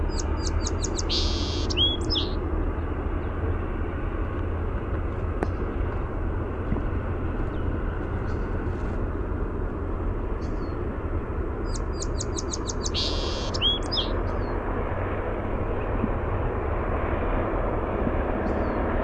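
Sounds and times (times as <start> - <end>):
song sparrow song: 0.0 - 2.4, 10.3 - 10.9, 11.6 - 14.6, 18.4 - 18.9
low rumbling noise: 0.0 - 19.0.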